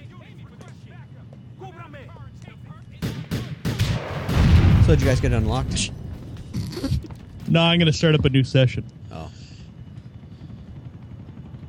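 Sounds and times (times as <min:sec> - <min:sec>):
helicopter approaching in a video game: 0:00.0 - 0:11.6
speech: 0:04.9 - 0:06.0, 0:07.5 - 0:08.9.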